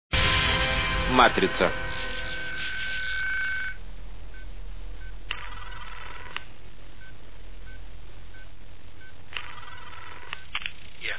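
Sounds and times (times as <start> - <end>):
steady low hum: 0.2 - 11.1
speech: 1.1 - 1.8
telephone ringing with a bright electronic ring tone: 2.2 - 3.8, 5.3 - 6.4, 9.4 - 10.5.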